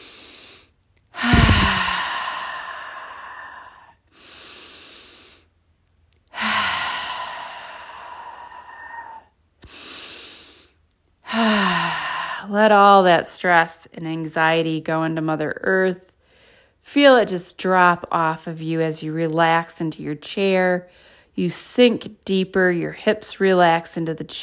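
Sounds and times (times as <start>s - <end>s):
slow deep breaths during a relaxation exercise: 0.0s - 5.6s, 6.3s - 12.5s, 16.1s - 16.8s, 20.9s - 21.4s
speech: 12.5s - 16.1s, 16.8s - 24.4s.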